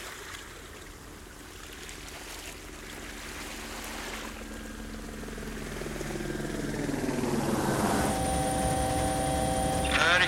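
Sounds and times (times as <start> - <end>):
helicopter engine droning with a whine: 2.6 - 10.2.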